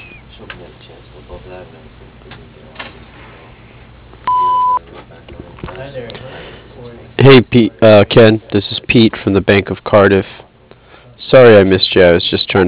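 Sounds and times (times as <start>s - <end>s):
voices talking: 0.0s - 3.9s, 4.8s - 12.6s
electronic voicemail beep: 4.3s - 4.8s
speech: 5.8s - 6.4s, 7.0s - 10.4s, 11.3s - 12.6s.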